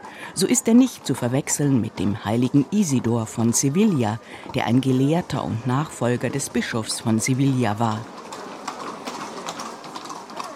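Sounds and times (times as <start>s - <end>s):
busy outdoor crowd murmur: 0.0s - 10.5s
speech: 0.4s - 8.2s
horse-drawn wagon hooves clip-clopping: 4.6s - 10.5s.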